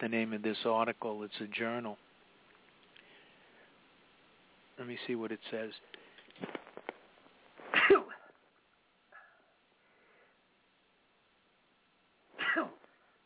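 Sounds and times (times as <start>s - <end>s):
speech: 0.0s - 2.1s, 4.8s - 6.6s, 12.6s - 12.8s
person sneezing: 7.7s - 8.3s, 12.3s - 12.9s.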